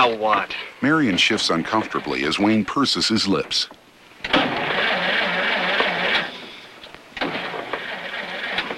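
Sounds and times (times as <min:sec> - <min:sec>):
speech: 0:00.0 - 0:04.6
car engine running roughly and cutting out from lack of gas: 0:04.3 - 0:06.4, 0:07.2 - 0:08.7.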